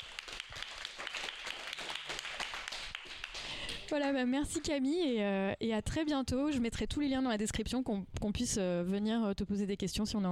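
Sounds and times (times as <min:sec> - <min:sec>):
crowd applauding: 0:00.0 - 0:03.9
speech: 0:03.9 - 0:10.3.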